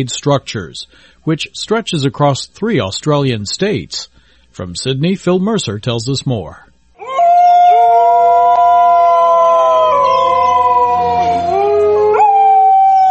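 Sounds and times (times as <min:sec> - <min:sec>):
speech: 0:00.0 - 0:06.7
dingoes howling in chorus: 0:07.0 - 0:13.0.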